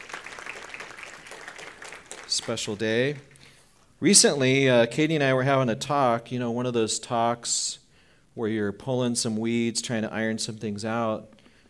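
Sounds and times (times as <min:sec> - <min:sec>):
audience applause: 0:00.0 - 0:03.4
speech: 0:02.4 - 0:03.3, 0:04.0 - 0:07.8, 0:08.4 - 0:11.4.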